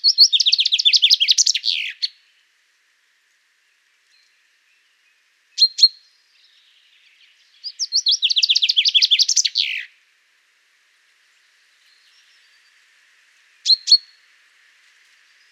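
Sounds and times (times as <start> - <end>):
common chaffinch Fringilla coelebs singing: 0.0 - 2.5, 3.6 - 10.0, 11.3 - 14.3.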